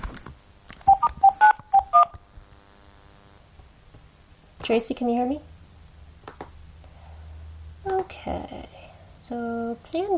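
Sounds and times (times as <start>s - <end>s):
telephone keypad tones dialing into a call-in line: 0.9s - 2.1s
speech: 4.7s - 5.5s, 8.2s - 10.1s.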